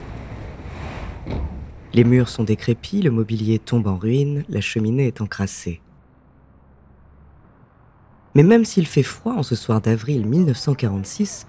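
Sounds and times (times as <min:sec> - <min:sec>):
cold wind blowing through a broken windowpane of a tiny apartment in Paris: 0:00.0 - 0:03.8
speech: 0:02.0 - 0:05.8, 0:08.4 - 0:11.4.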